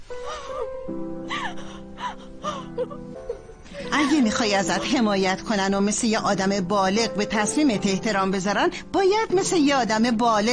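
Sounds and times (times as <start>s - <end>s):
person sobbing in high-pitched wails: 0.2s - 5.3s
speech: 0.9s - 1.2s, 2.2s - 10.5s.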